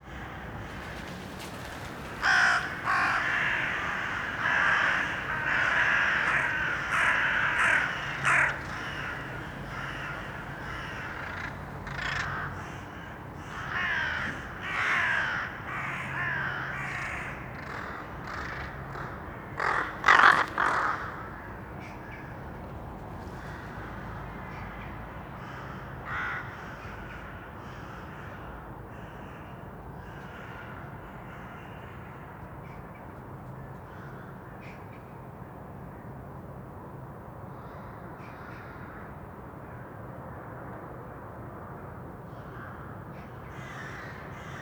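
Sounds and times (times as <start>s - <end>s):
urban crows: 0.0s - 22.3s, 25.4s - 32.3s, 42.5s - 44.6s.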